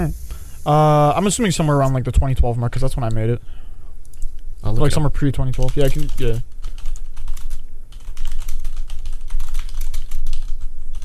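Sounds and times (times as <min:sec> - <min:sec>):
speech: 0:00.0 - 0:03.7, 0:04.6 - 0:06.6
fast typing on a computer keyboard: 0:05.2 - 0:11.0.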